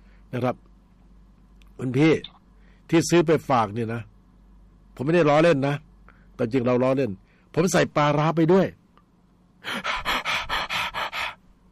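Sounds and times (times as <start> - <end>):
speech: 0.3 - 0.7, 1.8 - 4.1, 5.0 - 8.8, 9.6 - 9.9
voice imitating asthmatic panting and gasping: 9.6 - 11.4.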